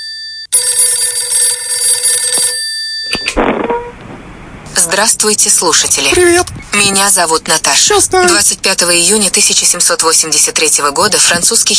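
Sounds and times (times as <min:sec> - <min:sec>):
telephone ringing with a bright buzzing electronic tone: 0:00.0 - 0:03.4
speech: 0:04.8 - 0:11.7.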